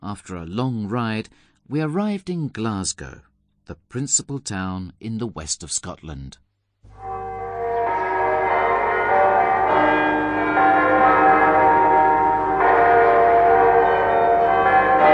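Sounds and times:
speech: 0.1s - 6.5s
church bells of Glasgow ringing on a Sunday morning: 6.9s - 15.1s.

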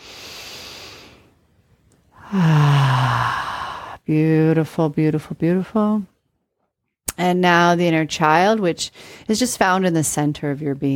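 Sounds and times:
person breathing deeply during a guided meditation: 0.0s - 1.4s, 2.1s - 4.0s
speech: 2.3s - 2.6s, 4.1s - 6.1s, 7.2s - 10.9s.

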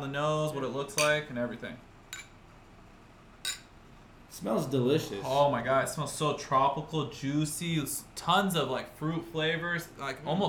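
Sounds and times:
speech: 0.0s - 2.0s, 4.4s - 10.4s
glasses clinking in a toast: 1.0s - 1.3s, 2.1s - 2.4s, 3.4s - 3.8s.

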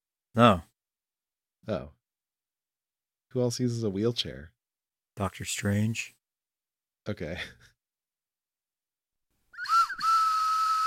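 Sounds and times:
speech: 0.4s - 0.7s, 1.6s - 2.0s, 3.3s - 4.6s, 5.2s - 6.2s, 7.0s - 7.7s
small toy train whistle blowing: 9.6s - 10.8s.

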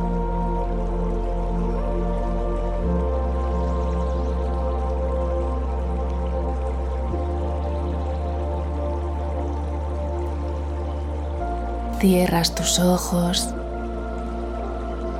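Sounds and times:
babbling stream flowing: 0.0s - 15.1s
low sustained musical drone: 0.0s - 15.1s
water drips: 0.0s - 15.1s
speech: 12.0s - 13.6s.

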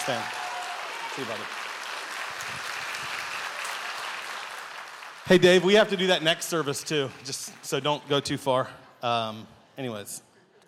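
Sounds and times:
speech: 0.0s - 0.4s, 1.2s - 1.6s, 5.2s - 10.3s
crowd clapping: 0.0s - 8.5s.

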